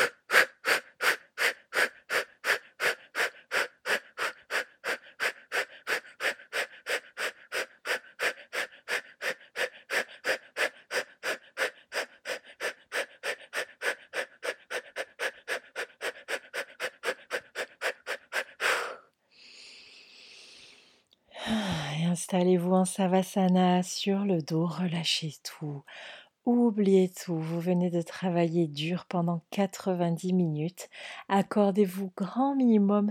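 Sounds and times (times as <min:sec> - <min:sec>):
rapid rhythmic breathing during a yoga session: 0:00.0 - 0:22.0
speech: 0:22.3 - 0:33.0.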